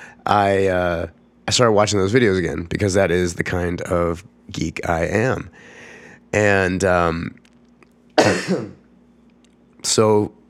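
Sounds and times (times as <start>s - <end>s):
speech: 0.2s - 7.4s, 8.2s - 8.8s, 9.8s - 10.4s
throat clearing and cough: 8.2s - 8.8s.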